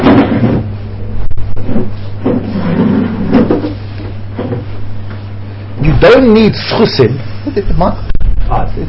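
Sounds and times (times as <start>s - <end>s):
wooden chairs being brought in and set down: 0.0s - 4.8s
steady low hum: 0.0s - 8.8s
speech: 6.0s - 8.1s.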